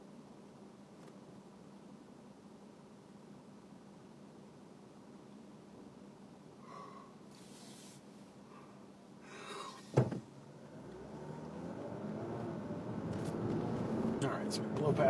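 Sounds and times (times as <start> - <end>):
city street traffic rumbling: 9.2 - 15.0
short sharp thump: 9.9 - 10.2
vehicle engine accelerating past: 10.6 - 15.0
speech: 14.5 - 15.0.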